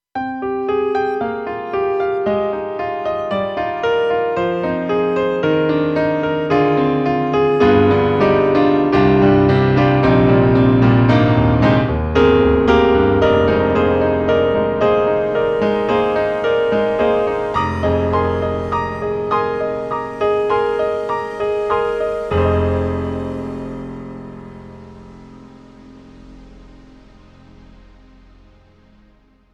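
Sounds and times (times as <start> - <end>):
synthesizer piano combination: 0.2 - 29.5.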